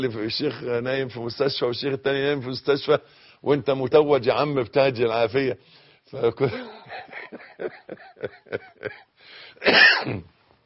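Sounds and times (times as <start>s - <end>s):
speech: 0.0s - 10.4s
laughter: 6.5s - 9.1s
person coughing: 9.6s - 10.3s.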